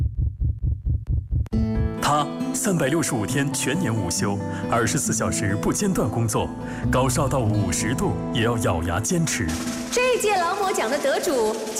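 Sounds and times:
rapid heartbeat thumping: 0:00.0 - 0:02.0
speech: 0:01.5 - 0:11.7.

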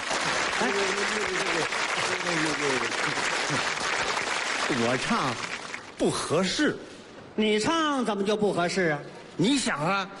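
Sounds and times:
crowd applauding: 0:00.0 - 0:06.0
speech: 0:00.6 - 0:10.1.

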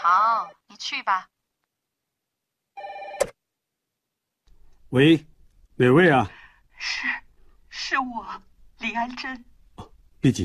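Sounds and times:
speech: 0:00.0 - 0:01.4, 0:04.9 - 0:07.2, 0:07.9 - 0:09.5, 0:10.2 - 0:10.4
telephone ringing: 0:02.8 - 0:03.4.

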